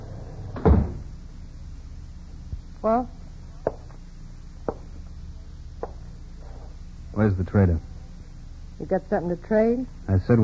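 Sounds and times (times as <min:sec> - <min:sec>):
wooden cabin front door swinging open with a heavy thump: 0:00.5 - 0:01.1
speech: 0:02.8 - 0:03.2, 0:07.2 - 0:07.9, 0:08.8 - 0:10.4.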